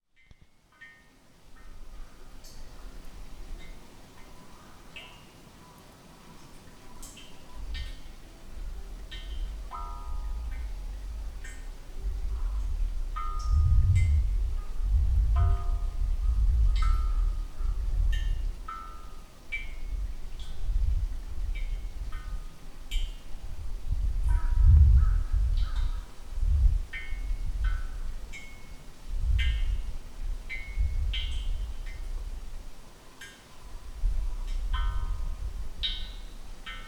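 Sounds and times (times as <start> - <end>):
suikinkutsu water dripping in a buried chamber: 0.2 - 36.8.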